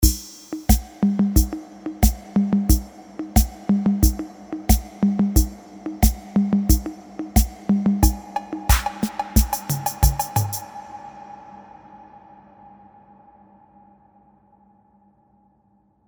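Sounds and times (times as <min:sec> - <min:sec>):
drum machine: 0:00.0 - 0:10.7.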